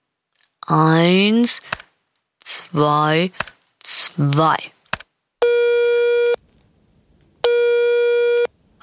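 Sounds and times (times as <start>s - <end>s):
speech: 0.7s - 1.8s, 2.5s - 4.8s
telephone ringback tone after dialing the fire brigade emergency number: 5.4s - 6.4s, 7.4s - 8.5s.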